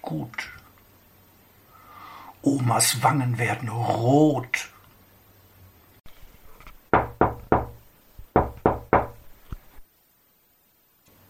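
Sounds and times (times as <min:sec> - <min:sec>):
speech: 0:00.1 - 0:00.6, 0:02.4 - 0:04.7
sharp knocks on a door: 0:06.9 - 0:09.3.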